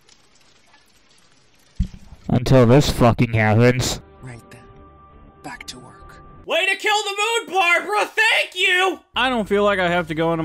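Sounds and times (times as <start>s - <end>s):
rain falling: 0.0s - 2.9s
speech: 2.5s - 4.1s, 6.9s - 10.4s.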